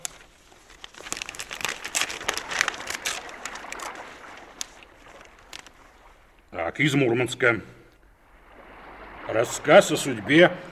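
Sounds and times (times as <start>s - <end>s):
paper of a mail parcel crinkling and tearing as it is opened: 0.0s - 5.9s
speech: 6.7s - 7.8s, 9.3s - 10.7s.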